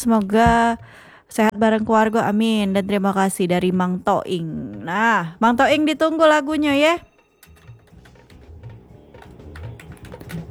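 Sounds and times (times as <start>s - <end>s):
speech: 0.0s - 7.1s
typing on a computer keyboard: 4.8s - 10.4s.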